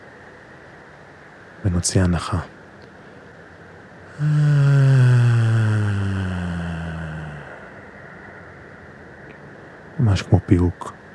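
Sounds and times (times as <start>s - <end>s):
speech: 1.6s - 2.6s, 4.2s - 4.6s, 10.1s - 11.0s
person humming on a long exhale: 4.1s - 7.8s
deep held breath: 4.1s - 8.4s.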